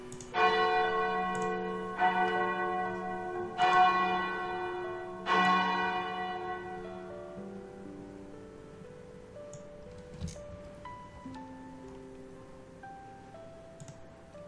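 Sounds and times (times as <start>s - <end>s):
temple bell ringing in a hall to signal the end of a martial contest: 0.3s - 7.4s.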